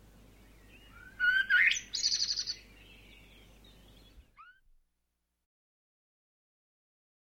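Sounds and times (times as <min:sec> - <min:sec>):
background hiss: 0:00.0 - 0:04.7
bird calling with sharp rising notes and a fast buzzy trill: 0:00.6 - 0:04.6.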